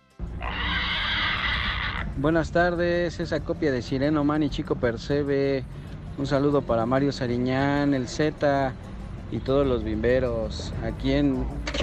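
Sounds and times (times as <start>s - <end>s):
person imitating a pig squealing: 0.4s - 2.2s
speech: 2.2s - 11.8s.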